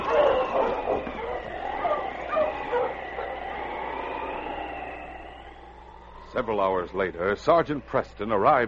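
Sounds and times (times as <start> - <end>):
team of husky sled dogs barking and yipping in a snowstorm: 0.0 - 5.4
speech: 6.4 - 8.6.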